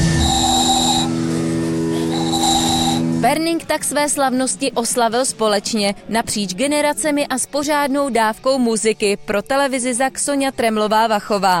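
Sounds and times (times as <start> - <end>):
constant hissy background: 0.0 - 1.3, 1.9 - 3.1
homemade whistle blown in shrill steady tones: 0.0 - 3.1
speech: 3.2 - 11.5.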